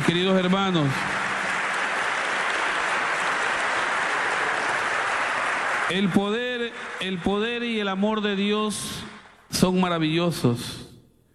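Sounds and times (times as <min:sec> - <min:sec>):
church congregation applauding during a worship service: 0:00.0 - 0:09.4
speech: 0:00.1 - 0:01.1, 0:05.9 - 0:10.8.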